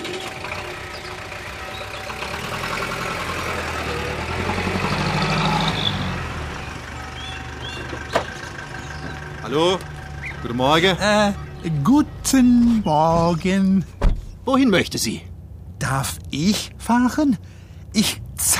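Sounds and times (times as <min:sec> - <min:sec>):
taxi engine idling: 0:00.0 - 0:17.8
speech: 0:09.5 - 0:09.9, 0:10.5 - 0:18.5.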